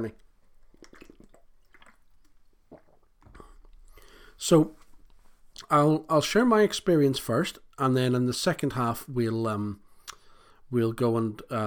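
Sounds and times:
speech: 0:00.0 - 0:00.2, 0:04.4 - 0:04.8, 0:05.7 - 0:09.8, 0:10.7 - 0:11.6
quiet slurping and wet mouth sounds sipping a drink: 0:00.6 - 0:04.1
swallow: 0:00.6 - 0:04.1.

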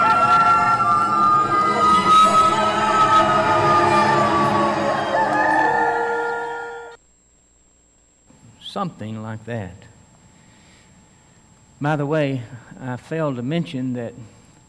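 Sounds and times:
rooster crowing: 0:00.0 - 0:07.0
speech: 0:08.8 - 0:09.9, 0:11.8 - 0:14.4.

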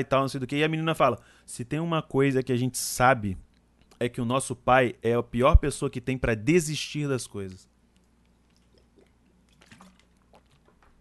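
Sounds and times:
speech: 0:00.0 - 0:07.7
person sipping water: 0:07.8 - 0:11.0
person gulping water: 0:08.6 - 0:10.7.

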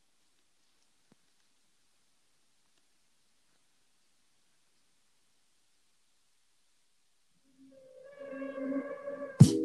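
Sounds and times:
eerie sustained synth tones of a rap song intro: 0:07.4 - 0:09.6.

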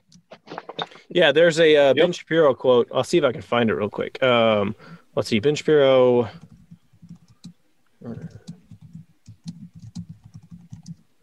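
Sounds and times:
speech: 0:01.1 - 0:06.5
clicking of computer keyboard keys: 0:06.3 - 0:11.0.

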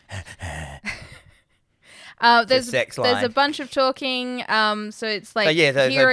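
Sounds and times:
person imitating heavy breathing on a phone call: 0:00.0 - 0:02.2
speech: 0:02.2 - 0:06.1.

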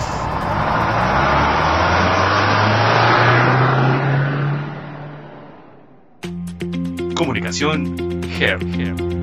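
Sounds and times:
car engine starting and revving: 0:00.0 - 0:06.2
speech: 0:07.2 - 0:09.1.

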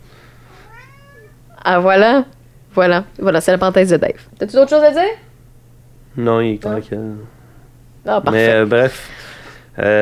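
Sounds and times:
low steady hum: 0:00.0 - 0:10.0
cat meowing: 0:00.5 - 0:01.6
speech: 0:01.6 - 0:05.2, 0:06.2 - 0:07.4, 0:08.0 - 0:09.2, 0:09.8 - 0:10.0.

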